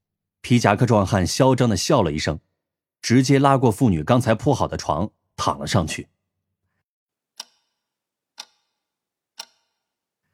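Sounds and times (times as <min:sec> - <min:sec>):
speech: 0:00.5 - 0:06.2
wall clock ticking in a small specialty shop: 0:07.3 - 0:10.3.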